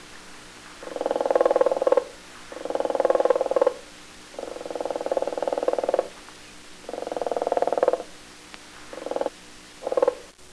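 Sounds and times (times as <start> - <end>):
flamingo giving rattling bursts of calls: 0.8 - 6.2, 6.8 - 8.1, 8.9 - 10.3.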